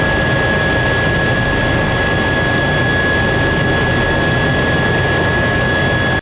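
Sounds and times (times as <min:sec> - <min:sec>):
EC135 turbine idling: 0:00.0 - 0:06.1.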